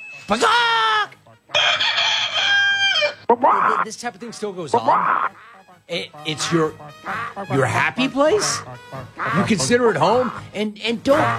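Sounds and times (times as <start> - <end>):
speech: 0.2 - 1.2, 3.3 - 11.3
rooster crowing: 1.5 - 3.3.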